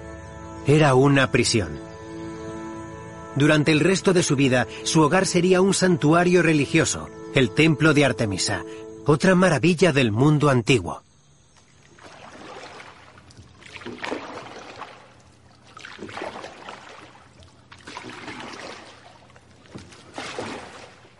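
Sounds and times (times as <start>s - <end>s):
speech: 0.7s - 1.9s, 3.4s - 11.1s
oars of a rowing boat splashing through water: 11.5s - 21.1s.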